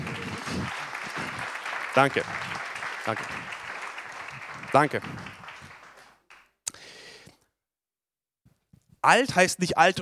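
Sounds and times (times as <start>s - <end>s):
large audience applauding: 0.0s - 6.6s
speech: 2.0s - 2.5s, 3.1s - 3.6s, 4.7s - 5.4s, 9.0s - 10.0s.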